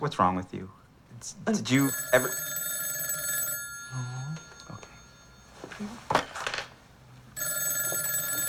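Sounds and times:
speech: 0:00.0 - 0:02.6, 0:03.9 - 0:04.8, 0:05.8 - 0:06.2
telephone bell ringing: 0:01.8 - 0:05.8, 0:07.4 - 0:08.4.

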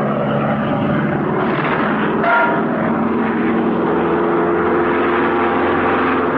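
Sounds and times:
propeller airplane engine droning while climbing and stalling: 0:00.0 - 0:06.3.

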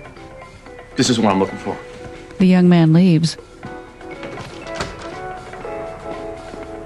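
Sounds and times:
speech: 0:01.0 - 0:03.5
door swinging shut: 0:04.1 - 0:05.3.

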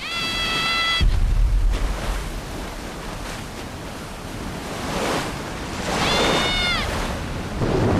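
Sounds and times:
stormy sea waves crashing around a boat at sea: 0:00.0 - 0:07.9
deep booming rumble of thunder: 0:01.0 - 0:02.8, 0:07.6 - 0:07.9.

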